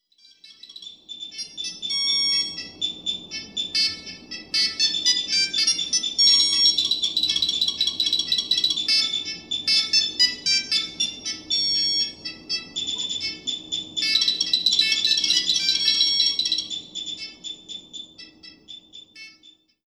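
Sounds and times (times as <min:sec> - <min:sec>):
dial tones: 0:01.6 - 0:02.7, 0:03.8 - 0:17.9.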